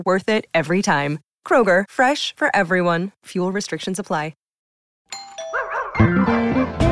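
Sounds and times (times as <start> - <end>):
speech: 0.0 - 4.4, 6.0 - 6.8
doorbell chiming ding-dong: 5.1 - 6.5.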